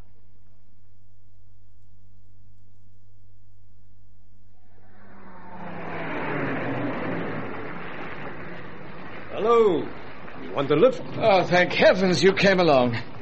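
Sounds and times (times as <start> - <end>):
low steady rumble: 0.0 - 13.2
heavy rain pouring down: 5.6 - 13.2
speech: 9.4 - 10.0, 10.6 - 13.1.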